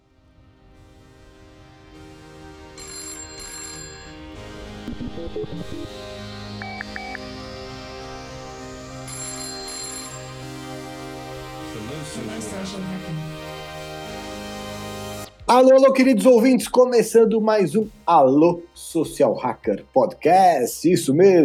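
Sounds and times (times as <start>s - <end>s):
quick chiming bell-like notes: 2.8s - 4.3s, 8.9s - 11.1s
podcast intro jingle as a bright electronic tune: 2.8s - 7.6s
rising sweep: 4.6s - 9.1s
speech: 5.2s - 6.1s, 12.2s - 13.4s, 15.5s - 21.4s.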